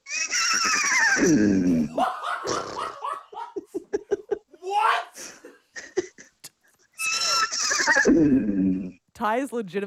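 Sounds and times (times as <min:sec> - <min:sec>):
person imitating a horse neigh: 0:00.0 - 0:03.0, 0:07.0 - 0:09.0
speech: 0:01.2 - 0:02.1, 0:09.2 - 0:09.8.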